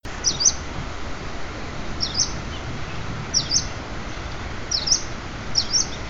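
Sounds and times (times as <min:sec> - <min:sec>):
steady background hiss: 0:00.0 - 0:06.0
bird chirping: 0:00.2 - 0:00.6, 0:02.0 - 0:06.0.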